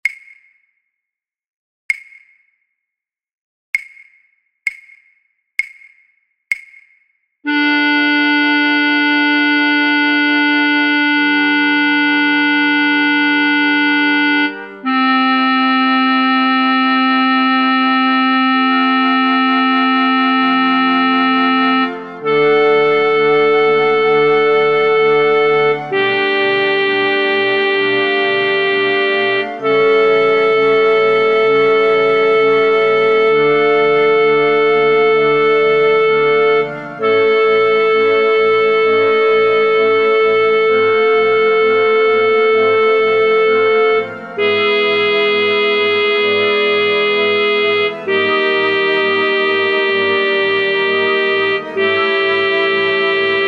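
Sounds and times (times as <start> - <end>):
flute choir playing: 7.5 - 53.4.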